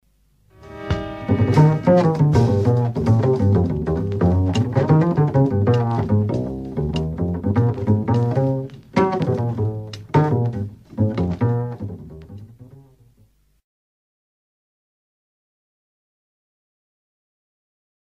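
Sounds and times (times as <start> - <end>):
pizzicato double bass: 0.7 - 13.4.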